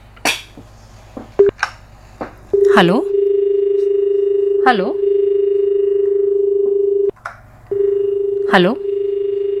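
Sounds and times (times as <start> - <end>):
telephone dialing tones as a call connects on a call-in programme: 2.6 - 7.1, 7.7 - 9.5
speech: 2.8 - 3.1, 4.6 - 5.0, 8.5 - 8.8.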